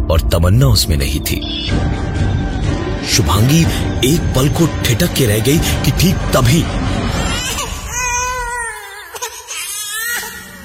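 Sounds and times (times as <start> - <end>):
speech: 0.2 - 7.0
baby girl lying on a bed crying: 7.1 - 10.6.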